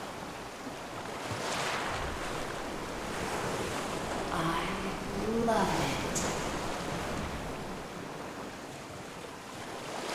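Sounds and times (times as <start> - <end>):
ocean surf washing on shore: 0.0 - 10.1
person speaking: 4.3 - 6.3.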